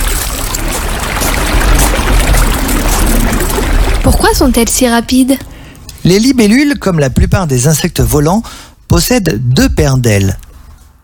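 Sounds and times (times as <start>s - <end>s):
river water rushing with bubbling and trickling: 0.0s - 4.4s
speech: 4.3s - 10.4s.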